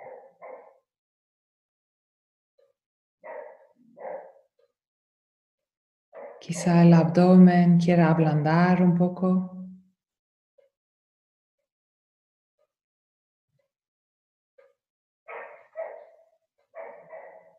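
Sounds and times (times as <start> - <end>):
dog barking: 0.0 - 0.9, 3.2 - 4.5, 6.2 - 6.4, 15.3 - 17.5
speech: 6.4 - 9.6.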